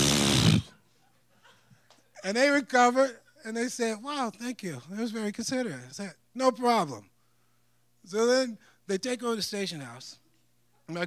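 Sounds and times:
voice imitating a fart with a raspberry: 0.0 - 0.8
speech: 2.2 - 7.1, 8.0 - 10.2, 10.9 - 11.0.

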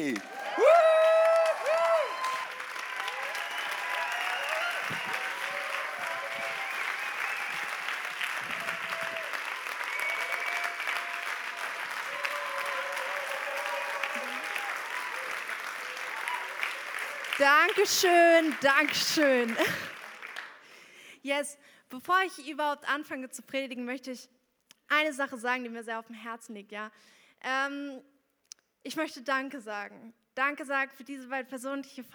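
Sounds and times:
speech: 0.0 - 0.3, 17.4 - 19.9, 21.2 - 24.3, 24.9 - 28.1, 28.8 - 32.1
large audience clapping: 0.0 - 20.8
cheers and whoops: 0.1 - 20.1.

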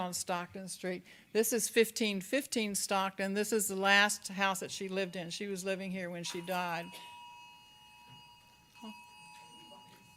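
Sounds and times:
speech: 0.0 - 7.1
room noise: 3.6 - 10.1
fire alarm sounding: 4.8 - 10.1.

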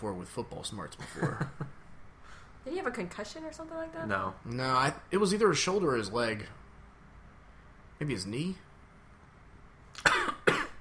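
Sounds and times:
speech: 0.0 - 1.8, 2.6 - 6.6, 8.0 - 8.7
person coughing: 10.0 - 10.7.

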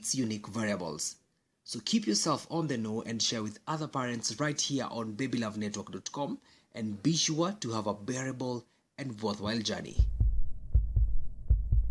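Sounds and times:
speech: 0.0 - 10.2
baby's heartbeat through a fetal monitor: 10.0 - 11.8.

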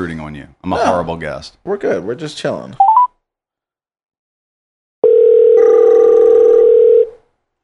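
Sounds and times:
speech: 0.0 - 2.9
telephone ringing tone while placing a call: 5.0 - 7.2.

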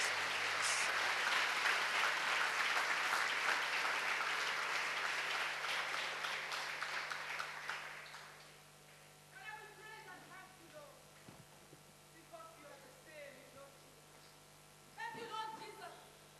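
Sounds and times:
crowd applauding: 0.0 - 8.6.

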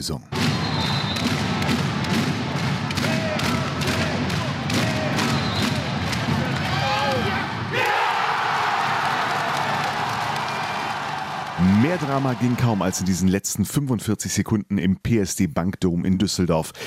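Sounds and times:
speech: 0.0 - 1.4, 11.7 - 16.8
rhythmic thumping: 0.3 - 6.7
handball arena crowd clapping: 0.6 - 7.2, 7.8 - 13.1
packed handball arena crowd roaring: 2.6 - 13.0.

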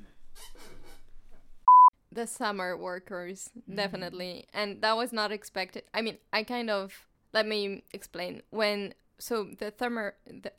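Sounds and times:
chair squeaking and creaking: 0.3 - 1.1
short steady electronic beep: 1.7 - 1.9
speech: 2.2 - 10.5.

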